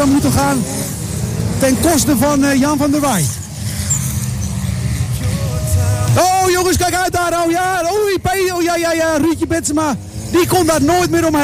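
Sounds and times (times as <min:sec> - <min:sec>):
speech: 0:00.0 - 0:01.0, 0:01.6 - 0:03.4, 0:06.1 - 0:11.4
race car engine roar drifting through a bend: 0:00.0 - 0:11.4.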